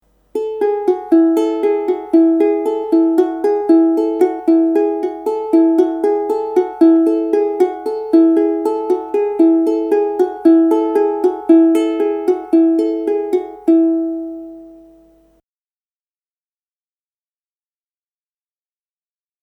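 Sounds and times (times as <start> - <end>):
ukulele playing a fast change-ringing pattern: 0.3 - 15.1.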